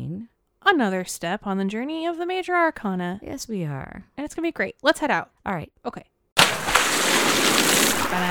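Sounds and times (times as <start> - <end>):
speech: 0.7 - 6.1
water from a kiddie pool fountain splashing and spraying: 6.4 - 8.2.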